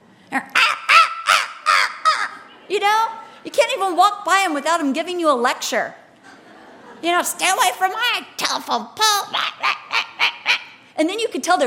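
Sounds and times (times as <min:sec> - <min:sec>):
speech: 0:00.3 - 0:00.6, 0:02.8 - 0:06.0, 0:07.0 - 0:09.8, 0:11.0 - 0:11.6
crow or raven cawing: 0:00.6 - 0:02.4.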